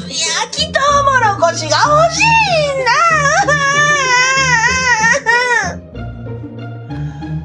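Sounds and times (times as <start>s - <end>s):
speech: 0.4s - 3.0s
grandchild crying hard with a high wail and sobs: 2.2s - 5.8s.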